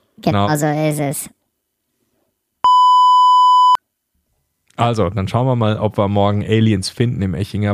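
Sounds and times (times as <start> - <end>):
speech: 0.2 - 1.4, 4.8 - 7.7
soundboard electronic beep: 2.6 - 3.8.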